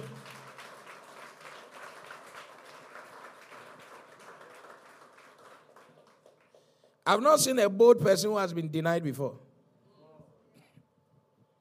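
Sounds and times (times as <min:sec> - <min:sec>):
crowd clapping: 0:00.0 - 0:07.0
speech: 0:07.1 - 0:09.4.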